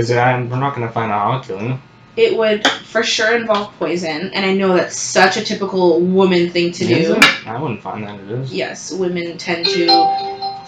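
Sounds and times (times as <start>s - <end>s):
speech: 0.0s - 10.4s
bright electronic phone notification chime: 9.6s - 10.6s.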